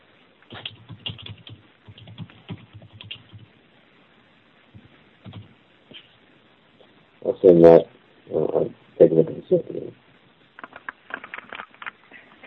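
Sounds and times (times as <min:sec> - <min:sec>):
typing on a computer keyboard: 0:00.5 - 0:03.5, 0:05.2 - 0:05.5
speech: 0:07.4 - 0:10.0.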